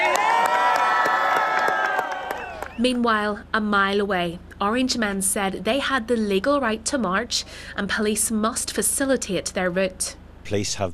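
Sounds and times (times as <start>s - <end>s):
crowd of demonstrators cheering and whooping at midnight: 0.0s - 2.8s
speech: 2.8s - 10.9s.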